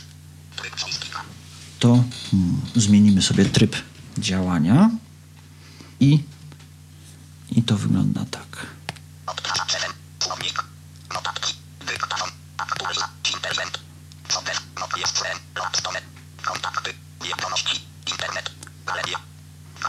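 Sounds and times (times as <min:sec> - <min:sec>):
steady low electrical hum: 0:00.0 - 0:19.8
mobile phone synthesized screen-reader voice speaking: 0:00.6 - 0:01.3, 0:09.3 - 0:19.8
speech: 0:00.6 - 0:05.0, 0:06.0 - 0:06.4, 0:07.5 - 0:08.8.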